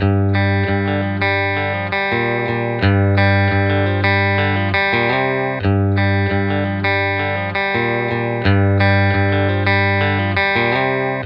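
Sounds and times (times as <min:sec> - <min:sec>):
low rhythm sample in C: 0:00.0 - 0:11.2.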